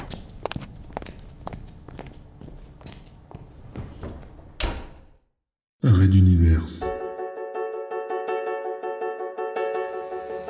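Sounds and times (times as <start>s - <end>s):
footsteps walking away across a hard floor: 0.0s - 4.4s
door swinging shut with a firm thud: 4.0s - 5.3s
speech: 5.8s - 7.0s.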